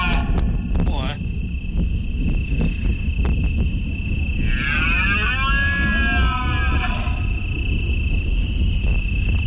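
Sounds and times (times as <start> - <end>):
constant low rumble: 0.0 - 9.4
steady high whine: 0.0 - 9.4
deer bellowing during autumn rut: 4.3 - 7.4.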